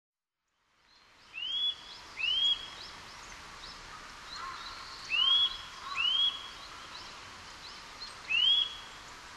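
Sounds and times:
steady background hiss: 0:00.5 - 0:09.3
Eurasian nuthatch upward-sweeping whistled calls: 0:01.4 - 0:02.7, 0:05.1 - 0:06.6, 0:08.3 - 0:08.9.

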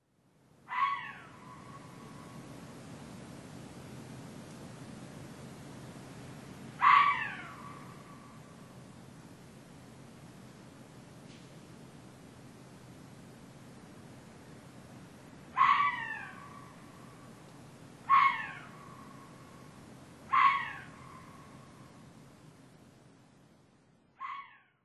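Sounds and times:
kitakitsune red fox calling: 0:00.7 - 0:02.3, 0:06.8 - 0:08.4, 0:15.5 - 0:16.9, 0:18.0 - 0:19.5, 0:20.3 - 0:22.0, 0:24.2 - 0:24.8.

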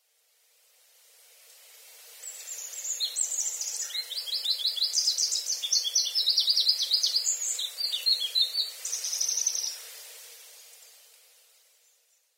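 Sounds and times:
Pallas's leaf warbler in Sakata: 0:02.0 - 0:10.8.

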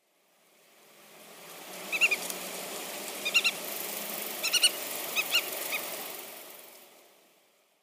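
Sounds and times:
black-tailed godwit calling: 0:01.9 - 0:02.3, 0:03.2 - 0:03.6, 0:04.4 - 0:05.9.

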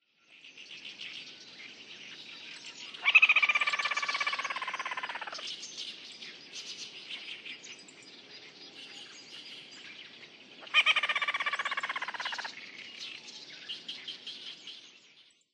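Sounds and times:
Ruddy-breasted Crake calling at Watarase: 0:02.9 - 0:05.4, 0:10.6 - 0:12.6.

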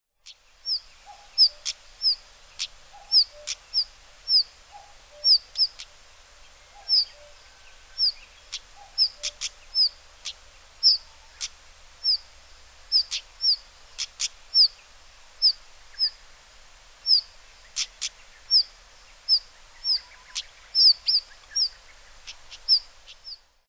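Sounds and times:
Stejneger's stonechat calling: 0:00.2 - 0:06.0, 0:06.8 - 0:14.8, 0:15.4 - 0:16.2, 0:17.0 - 0:23.5.

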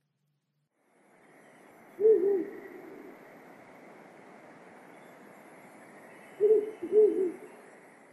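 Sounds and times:
steady hiss of night noise: 0:00.1 - 0:08.1
Japanese night heron low hollow hooting calls: 0:02.0 - 0:03.1, 0:06.4 - 0:07.5.

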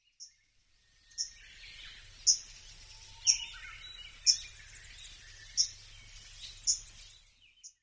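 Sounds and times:
Arctic Warbler calling: 0:01.1 - 0:07.6.

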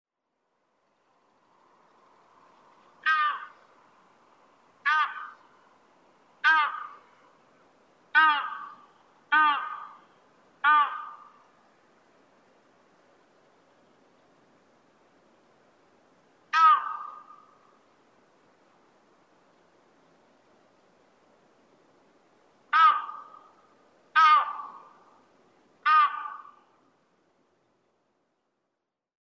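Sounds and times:
toki crested ibis on Sado: 0:01.9 - 0:03.8, 0:04.8 - 0:05.6, 0:06.4 - 0:07.3, 0:08.1 - 0:11.6, 0:16.5 - 0:17.8, 0:22.7 - 0:25.2, 0:25.8 - 0:26.8.

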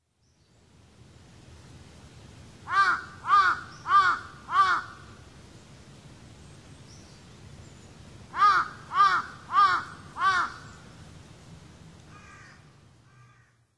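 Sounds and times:
Large-billed Crow calling in Kokubunji: 0:02.7 - 0:05.1, 0:08.3 - 0:10.8, 0:12.1 - 0:13.7.

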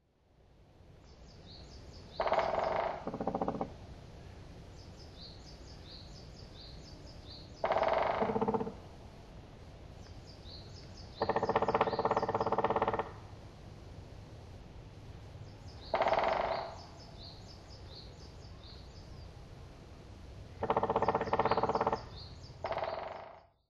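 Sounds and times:
black woodpecker calling: 0:01.8 - 0:03.8, 0:07.4 - 0:08.9, 0:10.0 - 0:13.4, 0:15.7 - 0:19.1, 0:20.5 - 0:23.6.

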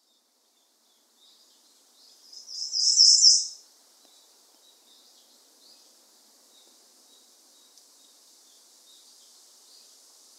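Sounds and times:
Ijima's leaf warbler singing on Miyake-jima: 0:00.0 - 0:10.3.

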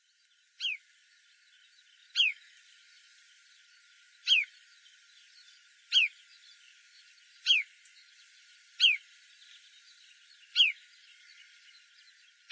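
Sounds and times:
marsh sandpiper whistled calls in Saga: 0:02.2 - 0:02.4, 0:04.2 - 0:04.5, 0:05.9 - 0:06.1, 0:07.4 - 0:07.7, 0:08.8 - 0:09.0, 0:10.5 - 0:10.8.

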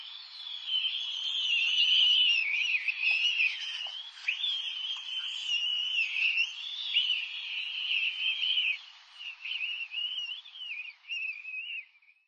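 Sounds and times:
Oriental stork calling: 0:00.5 - 0:11.8.

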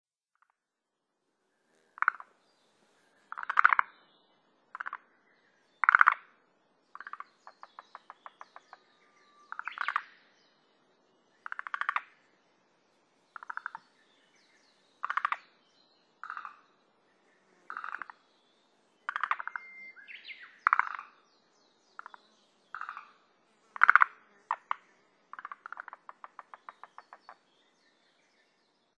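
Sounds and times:
forest green tree frog calling: 0:01.9 - 0:04.1, 0:04.7 - 0:05.1, 0:05.8 - 0:10.2, 0:11.4 - 0:12.2, 0:13.3 - 0:14.0, 0:15.0 - 0:15.6, 0:16.2 - 0:16.8, 0:17.7 - 0:18.3, 0:19.0 - 0:21.3, 0:22.0 - 0:27.5.

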